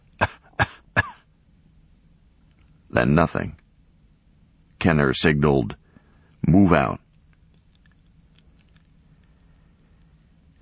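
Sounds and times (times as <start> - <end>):
person coughing: 0.2 - 1.3
speech: 2.9 - 3.6, 4.8 - 5.8, 6.4 - 7.0.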